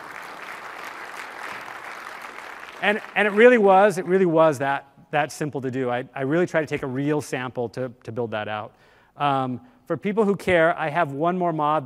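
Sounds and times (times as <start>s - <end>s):
audience applause: 0.0s - 3.9s
speech: 2.8s - 11.8s.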